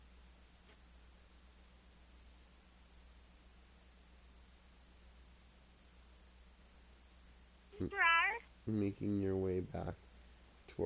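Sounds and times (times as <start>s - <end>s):
kitten meowing: 7.8s - 8.4s
speech: 8.7s - 10.0s.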